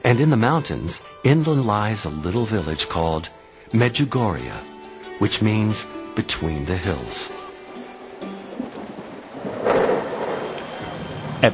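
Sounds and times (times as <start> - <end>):
rain-like noise: 0.0 - 11.5
speech: 0.1 - 7.4
thunder rumbling during a storm: 7.0 - 11.5.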